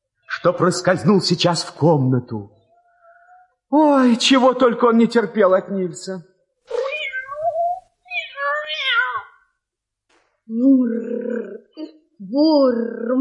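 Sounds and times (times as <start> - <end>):
speech: 0.4 - 2.6, 3.7 - 6.3, 12.3 - 13.2
white fluffy cat meowing: 6.7 - 9.4.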